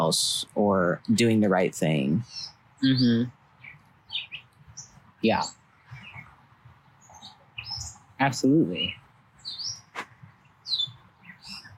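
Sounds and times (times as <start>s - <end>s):
speech: 0.0s - 3.4s, 5.2s - 5.6s, 8.2s - 9.0s
bird chirping: 0.0s - 11.7s.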